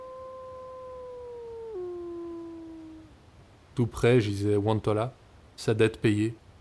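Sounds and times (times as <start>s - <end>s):
old wolf howling a mournful death song: 0.0s - 3.2s
speech: 3.8s - 6.4s.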